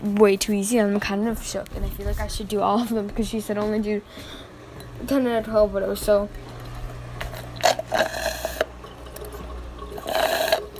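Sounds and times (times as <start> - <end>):
speech: 0.0 - 6.6
person drinking water from a glass: 6.6 - 10.7.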